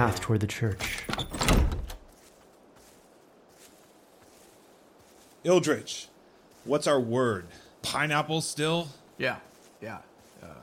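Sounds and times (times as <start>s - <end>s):
speech: 0.0s - 1.8s, 5.4s - 10.6s
door pushed open and swung shut: 0.7s - 2.1s
door rattle: 0.8s - 2.0s.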